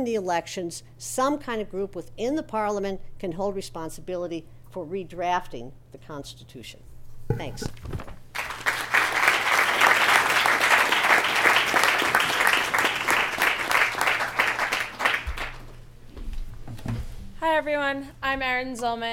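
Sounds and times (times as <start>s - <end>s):
speech: 0.0s - 8.1s, 17.5s - 19.1s
audience applauding: 8.3s - 15.8s.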